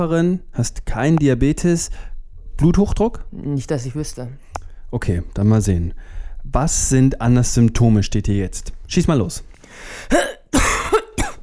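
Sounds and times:
speech: 0.0s - 10.6s
woman with a phlegmy cough coughing harshly: 10.1s - 11.4s.

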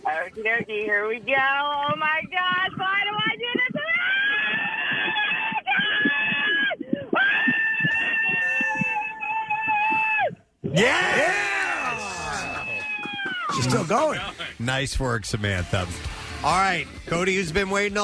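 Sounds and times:
speech: 0.2s - 3.2s, 10.8s - 11.5s, 13.6s - 18.0s
woman screaming on a roller coaster: 3.7s - 13.6s.

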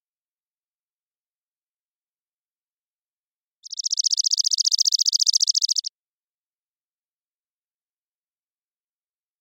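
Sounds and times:
chipping sparrow Spizella passerina trilling song in Washington: 3.6s - 5.9s.

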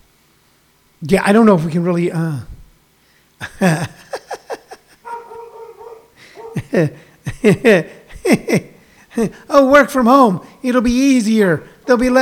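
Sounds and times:
speech: 1.0s - 2.5s, 3.4s - 4.0s, 6.7s - 12.1s
laughter: 3.4s - 9.4s
dogs barking in sharp short bursts: 5.0s - 7.2s, 11.6s - 12.1s.

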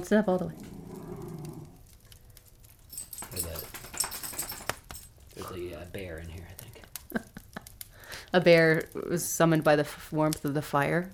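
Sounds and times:
speech: 0.0s - 0.7s, 5.4s - 7.3s, 8.3s - 11.1s
dog giving a short low growl: 0.4s - 2.0s
rustling and shuffling: 0.6s - 7.3s.

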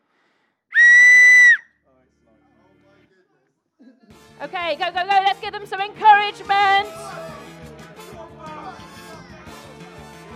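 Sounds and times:
shrill whistle blast to start a timer: 0.7s - 1.7s
speech: 4.4s - 7.3s.

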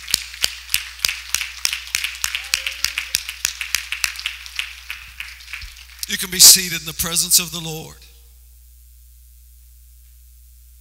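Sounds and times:
audience clapping hands in a steady rhythm: 0.0s - 7.6s
speech: 6.1s - 8.1s.

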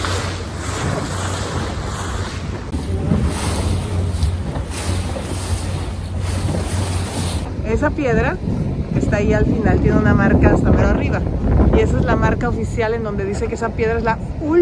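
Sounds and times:
gusty wind buffeting the microphone: 0.0s - 14.5s
low rumble: 0.0s - 14.5s
waves washing along the Bay of Santa María on Madeira: 0.0s - 14.5s
speech: 7.8s - 14.5s.

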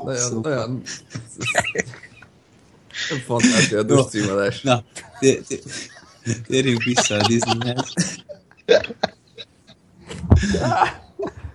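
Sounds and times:
speech: 0.0s - 2.1s, 3.0s - 9.1s, 10.4s - 11.4s
people gasping: 0.0s - 11.5s
people laughing: 0.0s - 11.5s
microphone handling rustle: 10.0s - 11.5s
microphone knocked over with loud thump: 10.2s - 10.7s.

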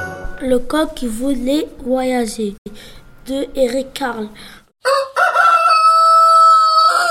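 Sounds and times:
speech: 0.5s - 5.0s
rooster crowing: 4.8s - 7.1s.

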